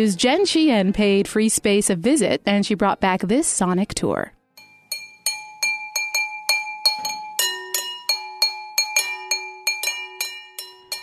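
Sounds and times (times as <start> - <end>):
speech: 0.0 - 4.4
pencils tapping on two round glass vases as DIY percussion: 4.6 - 11.0.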